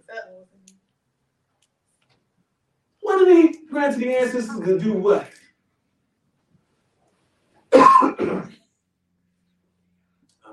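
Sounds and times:
speech: 3.8s - 5.3s
person clearing throat with a rough cough: 7.7s - 8.6s.

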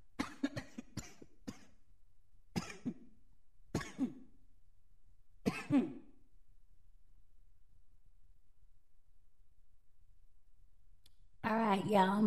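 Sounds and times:
person coughing harshly: 0.2s - 1.8s, 2.6s - 3.1s, 3.8s - 4.3s, 5.5s - 6.1s
speech: 11.9s - 12.2s.

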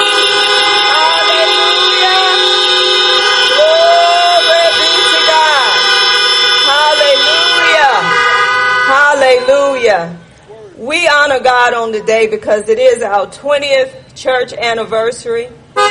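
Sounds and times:
car horns honking at a church anniversary service: 0.0s - 10.5s
people's voices among car horns: 0.9s - 2.5s, 3.5s - 5.8s, 6.7s - 8.2s, 8.9s - 15.5s
speech: 11.4s - 15.6s.

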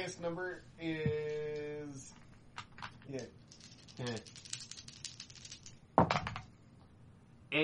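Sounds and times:
speech: 0.0s - 2.2s, 3.1s - 3.4s, 4.0s - 4.5s
dice rolled across a hard surface: 2.6s - 6.5s.

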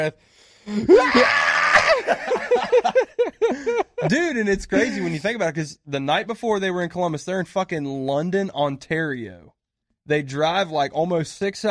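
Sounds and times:
speech: 0.0s - 11.6s
person screaming: 0.7s - 2.2s
laughter: 0.9s - 5.2s.

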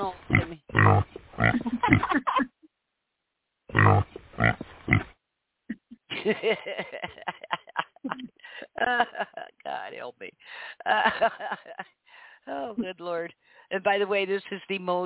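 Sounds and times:
person imitating a pig with snorting oinks and grunts: 0.2s - 2.3s, 3.7s - 5.0s, 5.7s - 6.1s
laughter: 1.5s - 2.6s, 5.7s - 9.9s, 10.8s - 11.9s
speech: 14.0s - 15.0s.

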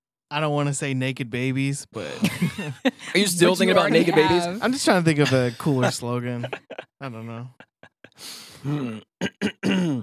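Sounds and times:
speech: 0.3s - 10.0s
laughter: 2.0s - 8.3s
person clearing phlegm from throat: 8.6s - 10.0s.

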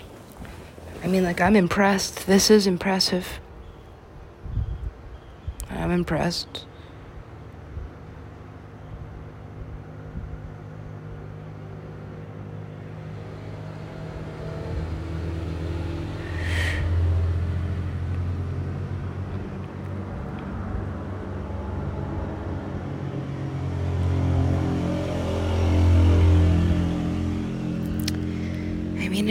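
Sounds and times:
cars passing on a road: 0.0s - 4.2s, 5.6s - 29.2s
speech: 1.1s - 3.4s, 5.9s - 6.7s
motorcycles passing on a road: 6.5s - 29.2s
vehicle engine revving: 10.6s - 29.2s.

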